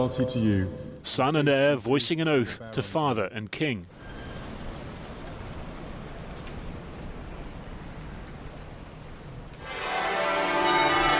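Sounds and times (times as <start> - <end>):
speech: 0.0 - 4.1
abbey church bells ringing a celebratory peal at a coronation: 9.6 - 11.1.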